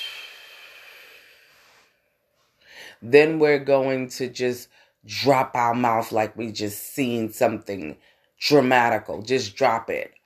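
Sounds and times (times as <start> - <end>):
slow deep breath through the nose during a children's meditation: 0.0 - 3.0
speech: 2.9 - 10.2.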